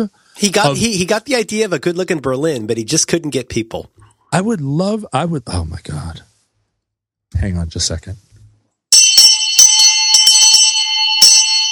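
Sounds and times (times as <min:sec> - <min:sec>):
speech: 0:00.0 - 0:06.3, 0:07.3 - 0:08.3
loud electric bell ringing: 0:08.9 - 0:11.7.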